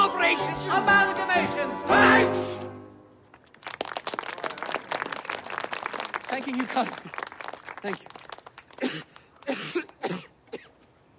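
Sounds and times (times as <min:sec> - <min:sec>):
speech: 0:00.3 - 0:02.7, 0:06.4 - 0:07.2, 0:07.8 - 0:08.2
man coughing up blood in harsh wet coughs: 0:08.8 - 0:10.8.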